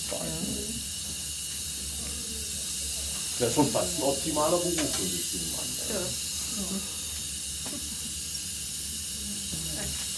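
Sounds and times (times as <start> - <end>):
air being let out: 0.0 - 10.1
speech: 3.4 - 7.0.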